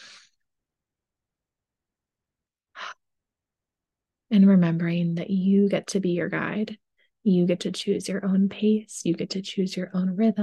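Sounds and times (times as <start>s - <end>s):
speech: 4.3s - 10.4s
breathing in through the nose and out through the mouth: 6.9s - 7.2s.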